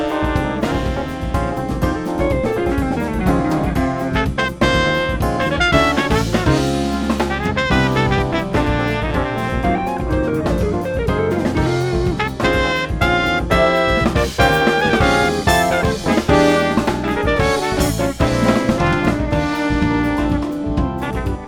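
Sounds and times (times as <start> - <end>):
drum hits: 0.0 - 21.4.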